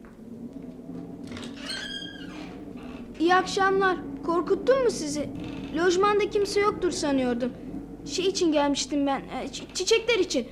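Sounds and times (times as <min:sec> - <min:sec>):
low steady hum: 0:00.0 - 0:10.5
door swinging open with squeaky hinge creak: 0:01.3 - 0:03.1, 0:05.4 - 0:05.9
speech: 0:03.2 - 0:10.5.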